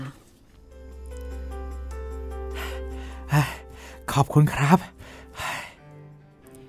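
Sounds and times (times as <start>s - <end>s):
steady low droning hum: 0.0s - 4.1s
boy panting after running: 2.5s - 4.1s, 4.8s - 5.8s
speech: 3.3s - 3.6s, 4.2s - 5.0s.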